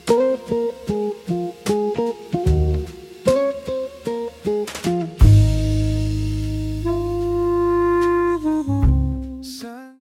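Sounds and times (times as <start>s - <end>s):
chill ambient music: 0.0s - 9.9s.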